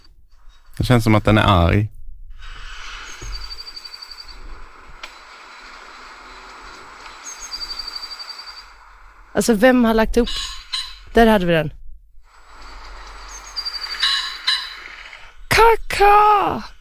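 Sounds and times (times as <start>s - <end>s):
steady outdoor hiss: 0.0s - 16.8s
speech: 0.8s - 1.9s, 9.4s - 11.8s, 16.0s - 16.7s
bird chirping: 2.8s - 4.5s, 7.0s - 8.9s, 10.2s - 11.2s, 12.7s - 15.5s.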